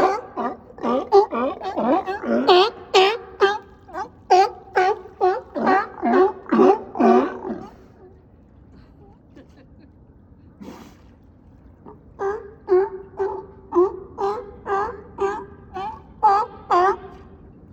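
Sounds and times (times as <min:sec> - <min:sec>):
sea lion giving rough honking croaks at a dock: 0:00.0 - 0:07.9, 0:12.2 - 0:17.4.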